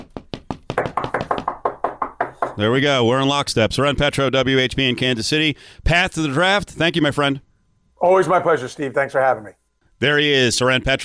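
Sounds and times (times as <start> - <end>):
knocking on wood: 0.0 - 2.6
speech: 2.6 - 11.0.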